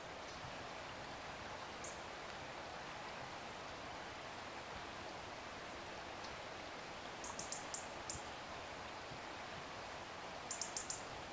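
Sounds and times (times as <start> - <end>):
soft background hiss: 0.0 - 11.3
European robin Erithacus rubecula ticking calls: 7.2 - 8.2, 10.5 - 11.1.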